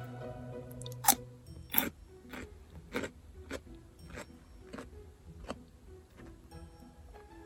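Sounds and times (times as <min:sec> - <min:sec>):
crunchy chewing of fresh cucumber: 0:00.8 - 0:06.3.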